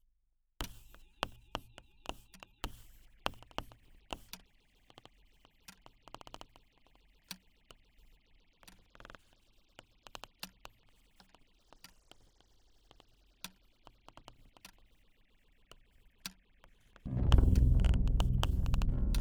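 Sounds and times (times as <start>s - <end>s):
music stems in initial state: 17.1s - 19.1s.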